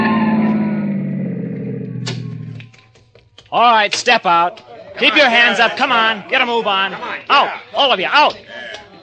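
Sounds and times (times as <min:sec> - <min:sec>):
car engine droning while weaving through highway traffic: 0:00.0 - 0:03.3
speech: 0:03.5 - 0:08.5
laughter: 0:04.4 - 0:07.8.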